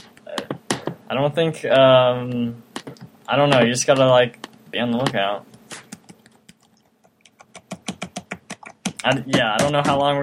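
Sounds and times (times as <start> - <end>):
speech: 1.1 - 5.5, 9.0 - 10.2
typing on a computer keyboard: 5.9 - 10.0.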